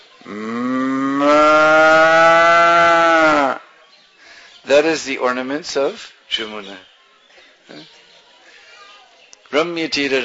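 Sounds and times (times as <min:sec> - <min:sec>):
speech: 0:00.2 - 0:00.6, 0:04.7 - 0:06.9, 0:07.7 - 0:08.0, 0:09.5 - 0:10.2
human voice imitating a cow mooing: 0:00.3 - 0:03.6.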